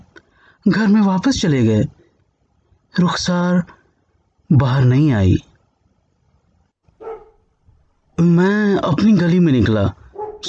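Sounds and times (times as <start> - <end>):
speech: 0.6 - 2.0, 2.9 - 3.8, 4.5 - 5.5, 8.2 - 10.4
stray dog barking in a deserted street: 7.0 - 7.4, 10.1 - 10.4.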